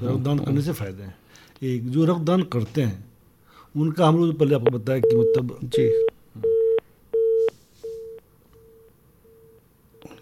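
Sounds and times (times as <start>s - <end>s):
speech: 0.0s - 3.1s, 3.7s - 6.5s
telephone busy tone beeps after a call disconnects: 5.0s - 10.2s.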